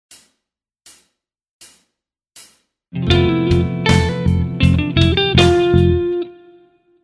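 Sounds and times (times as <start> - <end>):
musical lick in the Lydian mode: 3.0 - 6.5.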